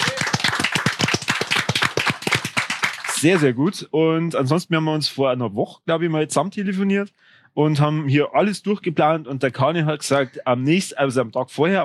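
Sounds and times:
brisk rhythmic hand claps: 0.0s - 3.5s
speech: 3.2s - 11.8s.

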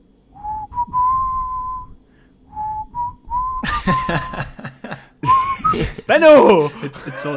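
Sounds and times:
person whistling a slow melodic tune: 0.4s - 4.3s, 5.2s - 5.9s
person laughing: 3.6s - 7.3s
speech: 3.9s - 4.5s, 6.1s - 7.3s.

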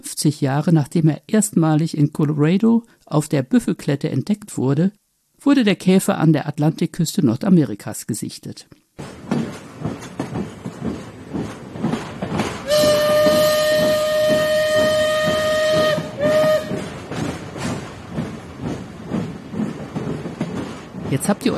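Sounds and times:
speech: 0.0s - 9.5s, 21.2s - 21.5s
steam train rattling and chugging: 9.0s - 21.5s
steam train horn blasts: 12.7s - 16.9s.

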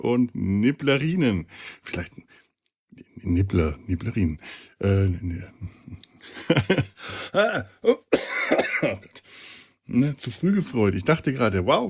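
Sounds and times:
speech: 0.0s - 2.4s, 3.2s - 11.8s
person coughing: 7.2s - 9.0s
person clearing their throat: 7.4s - 9.0s.

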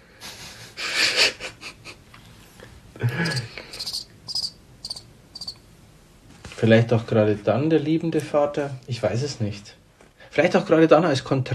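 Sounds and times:
speech: 3.0s - 3.5s, 6.6s - 9.8s, 10.4s - 11.5s
crickets chirping in short shrill trills: 3.0s - 5.6s.

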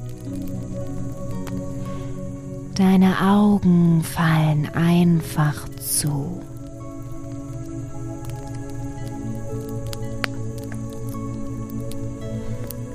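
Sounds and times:
crackling fire with sharp pops and snaps: 0.0s - 12.9s
soft sustained music: 0.0s - 12.9s
speech: 2.8s - 6.5s.

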